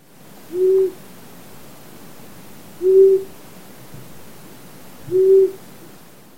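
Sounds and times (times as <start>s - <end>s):
faint hiss: 0.0s - 6.3s
long-eared owl hooting: 0.5s - 1.0s, 2.8s - 3.3s, 5.1s - 5.6s.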